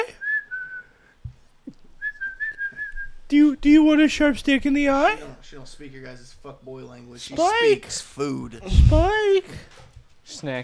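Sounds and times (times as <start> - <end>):
person whistling to call a dog: 0.1 - 1.0, 2.0 - 3.2
speech: 3.3 - 10.6.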